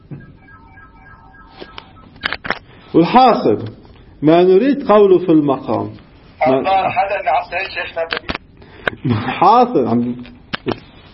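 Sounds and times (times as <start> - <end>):
faint electronic beeps and tones from a phone: 0.0 - 2.4
speech: 2.9 - 8.3, 9.0 - 10.8.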